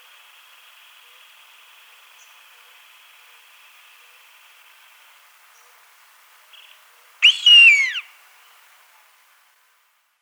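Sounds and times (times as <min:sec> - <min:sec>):
soft background hiss: 0:00.0 - 0:10.2
gray-lined hawk calling with a drawn-out slurred whistle: 0:07.2 - 0:08.1.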